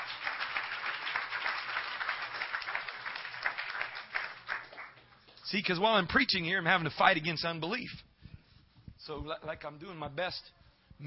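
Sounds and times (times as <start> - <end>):
audience clapping: 0.0 - 5.5
speech: 5.5 - 8.0, 9.1 - 11.0.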